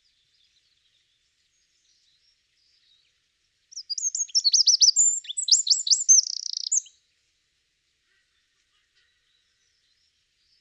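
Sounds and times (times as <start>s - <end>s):
Eurasian wren Troglodytes troglodytes singing: 3.7s - 6.9s.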